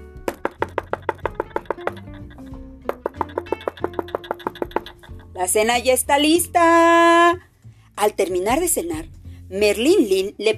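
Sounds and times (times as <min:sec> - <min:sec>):
knocking on a door: 0:00.2 - 0:02.3, 0:02.9 - 0:05.2
speech: 0:05.4 - 0:07.4, 0:08.0 - 0:10.5.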